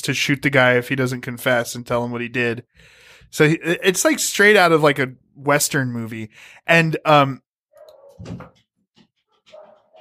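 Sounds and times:
speech: 0.0s - 7.4s, 8.2s - 8.6s
dog barking and whimpering: 7.8s - 8.3s, 9.4s - 10.0s.

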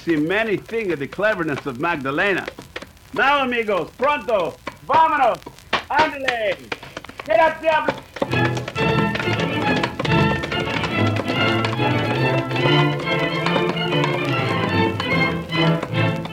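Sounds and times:
speech: 0.0s - 6.5s, 7.2s - 8.0s
dense busy background of sustained tones: 0.0s - 16.3s
galloping hoofbeats of outlaws' horses: 0.0s - 16.3s.

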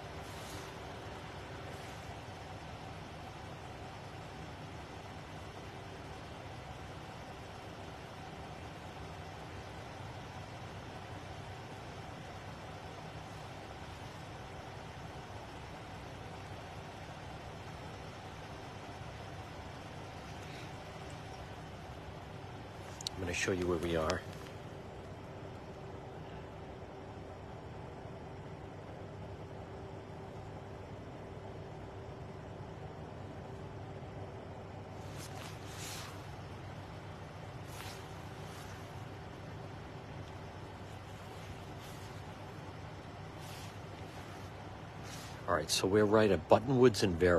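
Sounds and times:
car engines idling at Buttonwoods and Vera: 0.0s - 47.3s
street traffic on a blocked-off, rerouted street: 0.0s - 47.3s
speech: 23.3s - 24.3s, 45.6s - 47.3s.

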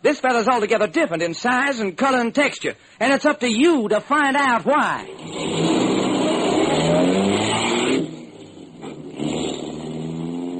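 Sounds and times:
speech: 0.0s - 5.8s
car engine roaring while driving off: 5.0s - 10.5s.

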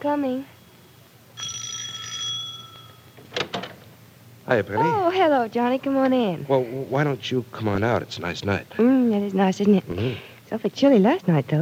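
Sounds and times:
speech: 0.0s - 0.6s, 4.5s - 11.5s
doorbell ringing with a bright sustained metallic tone: 1.3s - 3.4s.

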